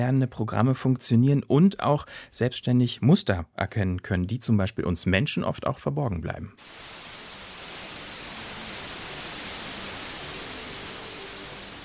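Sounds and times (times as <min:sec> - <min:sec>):
speech: 0:00.0 - 0:07.0
white noise hiss: 0:06.6 - 0:11.8.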